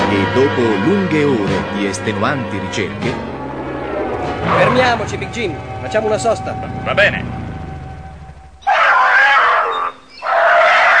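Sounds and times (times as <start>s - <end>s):
speech: 0.2s - 3.3s, 4.5s - 7.4s
frightened tiger cub crying: 8.6s - 10.9s.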